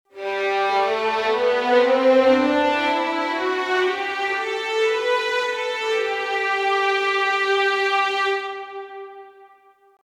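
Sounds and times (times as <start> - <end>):
violins playing in G major in first position: 0.1 - 10.0.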